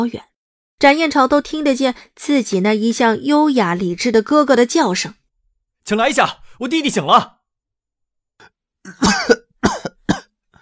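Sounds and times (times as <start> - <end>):
speech: 0.0 - 5.2, 5.8 - 7.4
weakened young man coughing in a hospital bed: 8.8 - 10.6.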